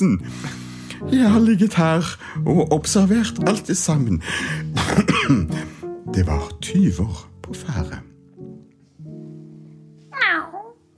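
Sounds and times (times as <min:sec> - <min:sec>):
speech: 0:00.0 - 0:08.1
cat meowing: 0:10.1 - 0:10.8.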